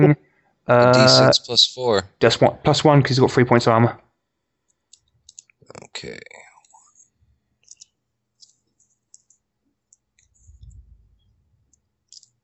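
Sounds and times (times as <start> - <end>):
speech: 0.0 - 4.0, 5.7 - 6.4
laptop keyboard keys clicking: 4.9 - 5.6, 7.6 - 10.7
soft low thump: 10.4 - 11.2.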